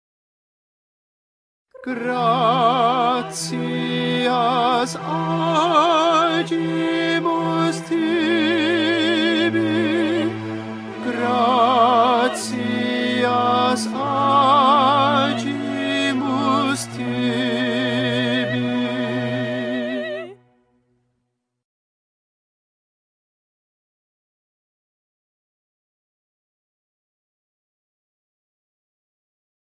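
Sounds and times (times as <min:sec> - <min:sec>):
tenor singing: 0:01.8 - 0:20.4.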